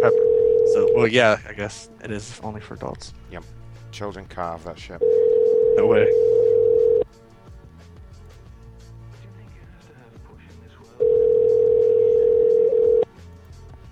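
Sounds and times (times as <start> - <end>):
telephone ringback tone while calling a cell phone: 0.0 - 1.0, 5.0 - 7.0, 11.0 - 13.0
speech: 1.0 - 5.2, 5.8 - 6.4.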